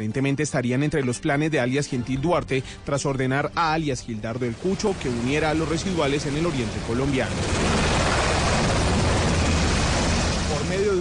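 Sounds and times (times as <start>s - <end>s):
speech: 0.0s - 7.8s
Colombian army helicopter carrying captured people flying overhead: 4.2s - 10.9s.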